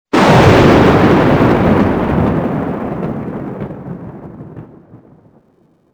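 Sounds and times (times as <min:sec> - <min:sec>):
loud thunder: 0:00.1 - 0:05.5.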